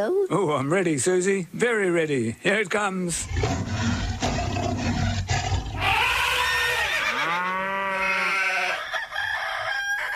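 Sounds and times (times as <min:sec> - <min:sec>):
speech: 0:00.0 - 0:03.9
rough mixed noises: 0:03.0 - 0:07.4
rooster crowing: 0:05.8 - 0:10.1.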